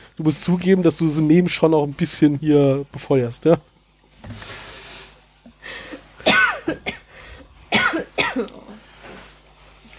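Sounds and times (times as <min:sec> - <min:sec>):
speech: 0:00.2 - 0:03.7
person coughing harshly: 0:05.9 - 0:07.1, 0:07.7 - 0:08.8.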